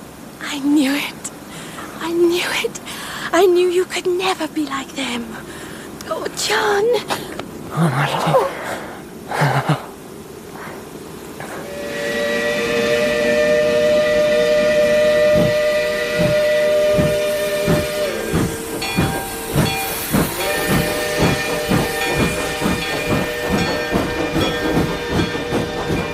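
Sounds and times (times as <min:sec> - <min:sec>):
speech: 0:00.5 - 0:01.2, 0:02.1 - 0:09.8
steam train steam hissing: 0:08.6 - 0:26.1
steam train whistle: 0:11.5 - 0:26.1.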